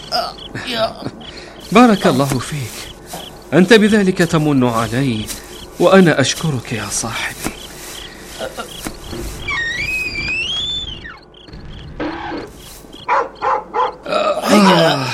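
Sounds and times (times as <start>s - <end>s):
high drawn-out whining tones: 0.0s - 14.3s
speech: 0.1s - 2.9s, 3.5s - 7.5s
dog barking: 13.0s - 14.0s.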